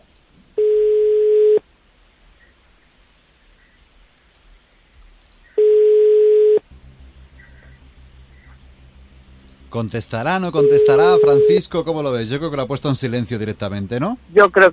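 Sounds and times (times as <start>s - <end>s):
telephone busy tone beeps after a call cuts off: 0.6s - 1.6s, 5.6s - 6.6s, 10.6s - 11.6s
speech: 9.7s - 14.7s.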